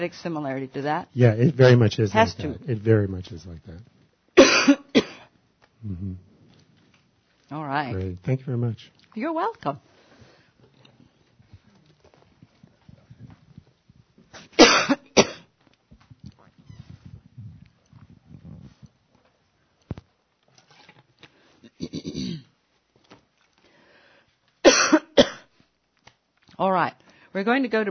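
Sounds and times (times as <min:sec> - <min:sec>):
speech: 0:00.0 - 0:03.9, 0:05.8 - 0:06.3, 0:07.5 - 0:09.9, 0:26.6 - 0:27.8
harsh coughing: 0:04.4 - 0:05.3, 0:14.4 - 0:15.5, 0:21.7 - 0:22.5, 0:24.6 - 0:25.5.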